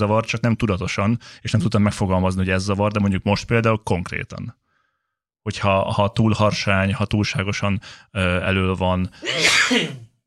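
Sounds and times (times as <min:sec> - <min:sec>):
speech: 0:00.0 - 0:04.6, 0:05.4 - 0:10.0
person sneezing loudly: 0:09.2 - 0:10.1.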